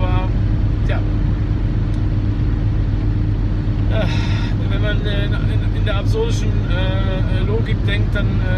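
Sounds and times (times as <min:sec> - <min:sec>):
car engine rumble and road noise inside a moving car: 0:00.0 - 0:08.5
speech: 0:05.0 - 0:08.5.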